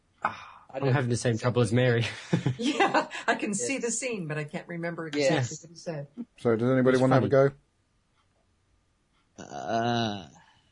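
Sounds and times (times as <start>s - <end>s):
speech: 0.2s - 7.6s, 9.4s - 10.3s
laughter: 2.0s - 3.4s
burp: 9.4s - 10.4s.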